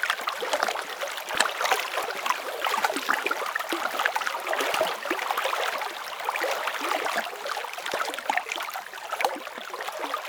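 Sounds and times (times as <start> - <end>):
water ambience: 0.0 - 10.2.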